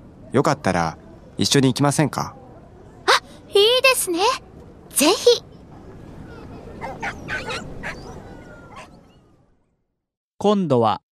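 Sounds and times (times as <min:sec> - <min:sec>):
speech: 0:00.3 - 0:02.4, 0:03.1 - 0:05.5, 0:06.8 - 0:08.0, 0:10.4 - 0:11.0
dog barking in sharp yips: 0:06.8 - 0:08.9.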